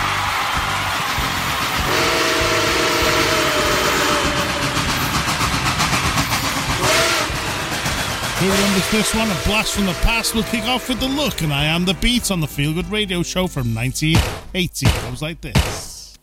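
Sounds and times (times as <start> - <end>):
rhythmic train chugging: 0.0 - 14.2
loud rumble of a moving train: 0.1 - 12.5
train whistle blowing: 1.2 - 5.8, 6.5 - 12.0
speech: 8.4 - 15.9.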